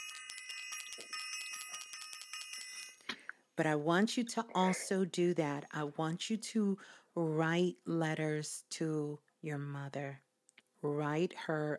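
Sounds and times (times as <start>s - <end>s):
bright metallic bell ringing rapidly: 0.0s - 3.0s
speech: 3.6s - 10.2s, 10.8s - 11.7s.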